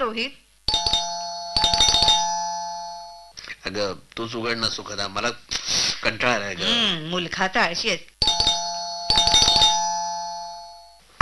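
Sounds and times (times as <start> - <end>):
speech: 0.0 - 0.8, 3.6 - 8.1
doorbell ringing in a home: 0.7 - 3.4, 8.2 - 11.0.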